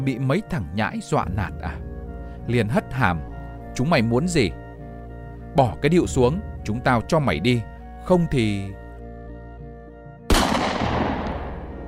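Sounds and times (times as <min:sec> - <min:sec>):
speech: 0:00.0 - 0:04.6, 0:05.5 - 0:08.8
warning gunshot fired into the air with long rumbling echo: 0:10.3 - 0:11.8.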